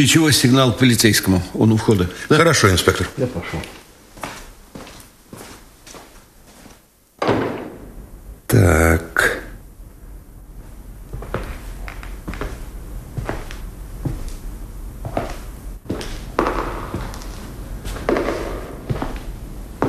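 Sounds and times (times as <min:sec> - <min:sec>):
speech: 0:00.0 - 0:03.8, 0:08.5 - 0:09.0
footsteps echoing in an empty room: 0:03.6 - 0:08.1, 0:10.5 - 0:19.8.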